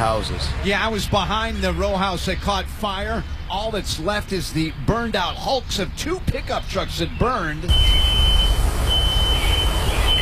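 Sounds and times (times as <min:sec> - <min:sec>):
speech: 0:00.0 - 0:08.2
heavy low rumble: 0:07.7 - 0:10.2
smoke detector alarm going off in a row house: 0:07.7 - 0:10.2.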